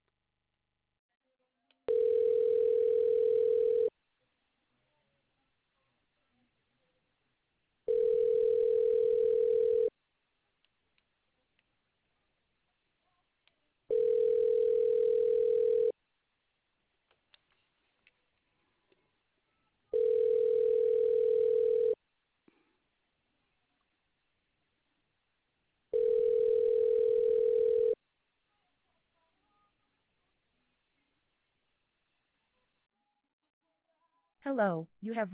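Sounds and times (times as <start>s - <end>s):
telephone ringback tone while a call is transferred: 1.9s - 3.9s, 7.9s - 9.9s, 13.9s - 15.9s, 19.9s - 22.0s, 25.9s - 28.0s
speech: 34.5s - 35.3s.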